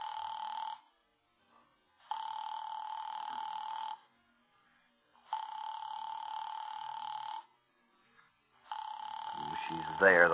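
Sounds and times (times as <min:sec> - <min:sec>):
unanswered telephone ringback tone heard over a line: 0:00.0 - 0:00.9, 0:02.1 - 0:04.1, 0:05.2 - 0:07.5, 0:08.7 - 0:10.3
speech: 0:10.0 - 0:10.3.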